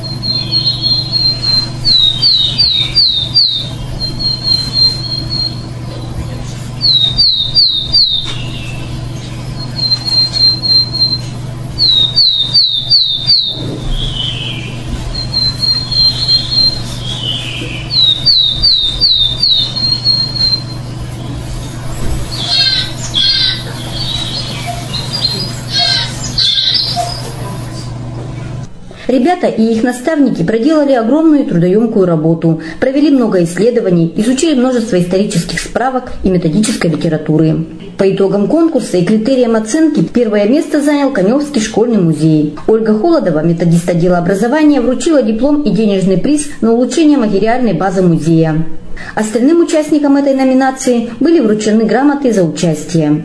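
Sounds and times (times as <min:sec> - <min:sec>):
willow tit singing: 0:00.0 - 0:06.1, 0:06.8 - 0:21.0, 0:22.3 - 0:27.3
steady low hum: 0:00.0 - 0:53.2
speech: 0:03.0 - 0:05.0, 0:12.2 - 0:15.9, 0:18.7 - 0:22.5, 0:29.1 - 0:53.2.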